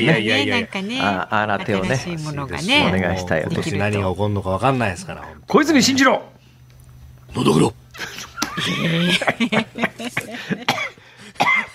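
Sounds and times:
speech: 0.0 - 6.3, 7.3 - 11.7
person in a coughing fit with harsh choking coughs and gasps: 7.4 - 11.7
strained laughter: 8.0 - 10.7.

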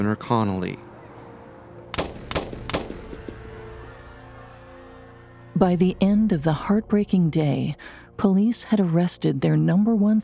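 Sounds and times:
speech: 0.0 - 0.9, 5.6 - 10.2
gunshots fired from the sixth floor of a building: 1.9 - 3.3.

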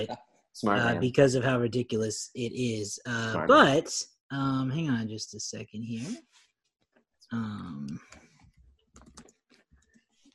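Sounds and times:
sigh-like voice sound: 0.0 - 1.0, 3.3 - 3.6
speech: 0.0 - 6.3, 7.3 - 8.2
typing on a computer keyboard: 9.0 - 9.4.

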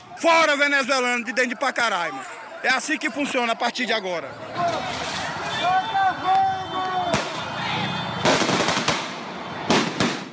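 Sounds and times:
riot crowd of residents shouting and yelling in the streets of Pacaraima: 0.0 - 10.0
speech: 0.2 - 4.7
fireworks bursting with sharp loud bangs: 7.1 - 7.6, 8.2 - 10.3.

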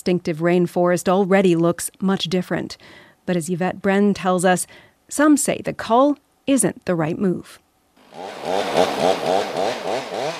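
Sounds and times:
speech: 0.0 - 9.5
chainsaw cutting through a cedar tree: 8.0 - 10.3.

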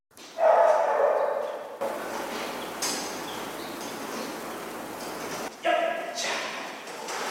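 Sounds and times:
Formosa mountain dog, explosives-sniffing police dog, barking: 0.4 - 1.7
hiss: 1.2 - 7.2.

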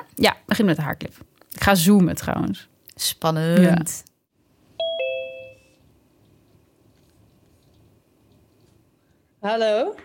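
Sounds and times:
speech: 0.2 - 4.1, 9.4 - 10.0
two-note electronic chime as a phone call is placed: 4.8 - 5.8.

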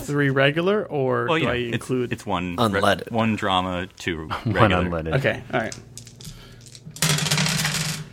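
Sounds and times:
speech: 0.1 - 6.0
laughter: 4.3 - 5.0
dice shaken in a hand: 5.7 - 8.1.

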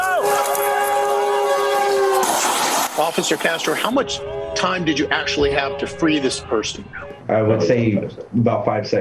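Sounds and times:
train horn blaring: 0.2 - 2.3, 3.3 - 7.6
speech: 3.2 - 8.9.

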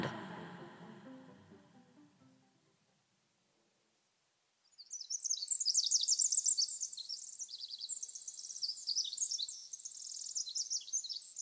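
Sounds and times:
musical fade: 0.0 - 2.6
dense chorus of birds chirping and singing: 4.8 - 11.4.

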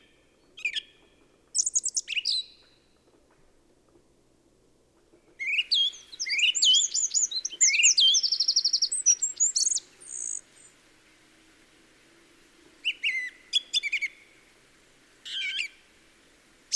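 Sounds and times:
wren singing: 0.6 - 2.6, 5.4 - 10.8, 12.8 - 14.3, 15.3 - 15.8.

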